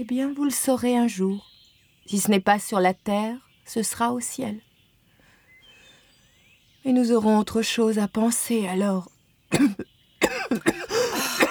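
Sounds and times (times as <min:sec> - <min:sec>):
speech: 0:00.0 - 0:01.5, 0:02.1 - 0:04.7, 0:06.8 - 0:09.9, 0:10.5 - 0:10.7
person coughing with harsh raspy hacking coughs: 0:09.5 - 0:11.4.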